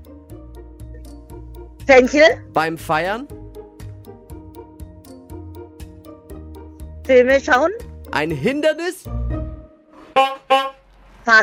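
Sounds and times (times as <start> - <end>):
speech: 1.9 - 3.4, 7.1 - 9.3, 11.3 - 11.4
brassy buzzing horn blasts sounding the end of a timed round: 9.9 - 11.1.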